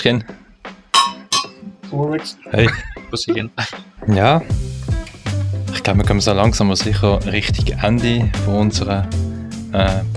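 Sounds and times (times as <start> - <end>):
speech: 0.0 - 0.4, 1.9 - 4.7, 5.7 - 10.1
glasses clinking in a toast: 1.0 - 1.6.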